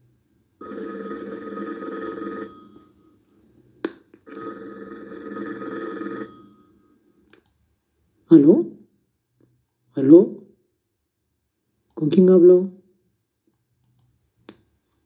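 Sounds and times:
telephone ringing with a trilling electronic tone: 0.6s - 3.4s, 4.2s - 7.0s
speech: 8.3s - 8.7s, 12.1s - 12.8s.

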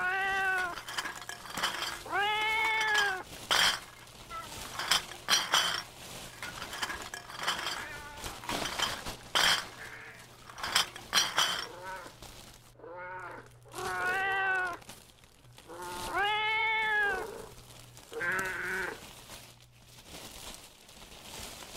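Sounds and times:
cat meowing with drawn-out wavering cries: 0.0s - 0.9s, 1.6s - 3.3s, 7.7s - 8.4s, 12.8s - 14.8s, 15.7s - 17.6s
glass or dishes clinking and rattling: 0.4s - 11.9s.

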